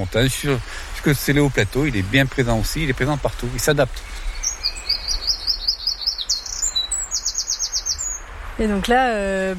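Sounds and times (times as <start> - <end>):
speech: 0.0 - 4.2, 8.6 - 9.5
small bird singing loudly in trills and chirps: 3.6 - 8.3.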